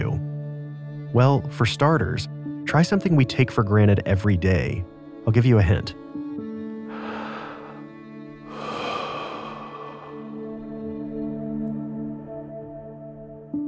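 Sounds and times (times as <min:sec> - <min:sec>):
speech: 0:01.1 - 0:06.0
deep breathing in and out: 0:06.9 - 0:11.2
steady low musical drone: 0:06.9 - 0:13.4.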